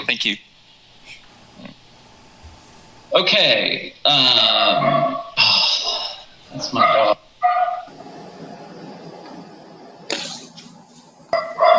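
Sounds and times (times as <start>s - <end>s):
speech: 0.0s - 0.5s, 3.1s - 5.2s, 6.5s - 7.2s
low hum: 0.0s - 11.7s
dog barking: 4.6s - 7.9s, 11.3s - 11.7s.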